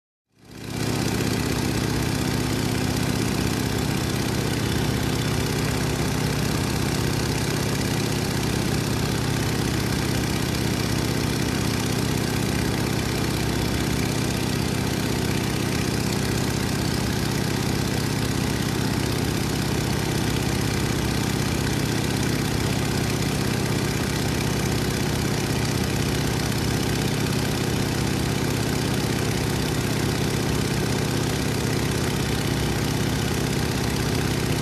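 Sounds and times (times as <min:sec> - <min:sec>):
near aircraft propeller noise: 0:00.4 - 0:34.6.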